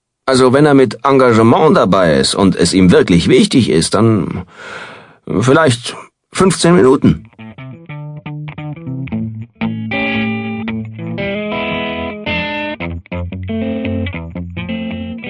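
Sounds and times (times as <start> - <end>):
speech: 0.3 - 7.3
distorted effects-laden electric guitar playing chords and melody: 7.2 - 15.2.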